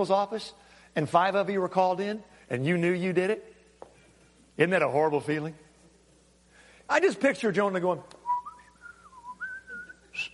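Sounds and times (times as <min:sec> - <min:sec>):
speech: 0:00.0 - 0:03.5, 0:04.6 - 0:05.6, 0:06.9 - 0:08.2
person whistling a tune softly: 0:08.2 - 0:10.3.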